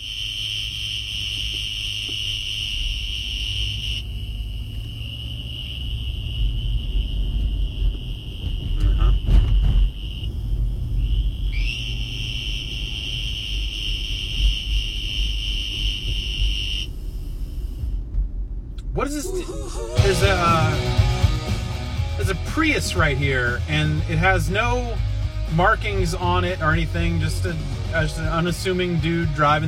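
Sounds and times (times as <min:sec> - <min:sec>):
western green toad mating call buzzing trill: 0:00.0 - 0:06.7, 0:11.0 - 0:16.9
low rumbling background: 0:01.1 - 0:29.6
speech: 0:22.8 - 0:29.6.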